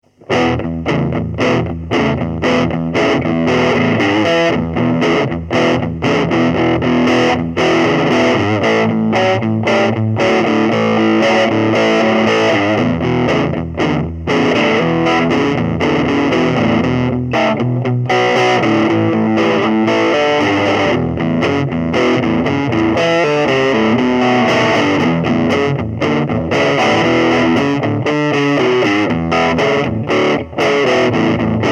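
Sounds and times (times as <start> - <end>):
electric guitar playing blues: 0.2 - 31.6.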